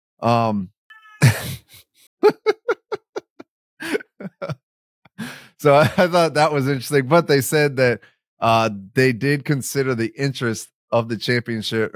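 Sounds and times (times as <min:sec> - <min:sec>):
speech: 0:00.2 - 0:02.6, 0:05.6 - 0:11.9
person imitating a cat meow: 0:00.9 - 0:01.6
short choppy laugh-like pulses: 0:01.2 - 0:04.6
breathy burst: 0:05.2 - 0:05.6.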